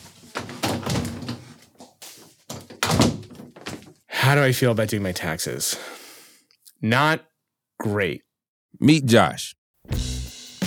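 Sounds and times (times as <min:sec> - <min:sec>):
door being pushed shut: 0:00.4 - 0:01.6, 0:02.5 - 0:03.9
speech: 0:04.3 - 0:06.0, 0:06.8 - 0:10.0.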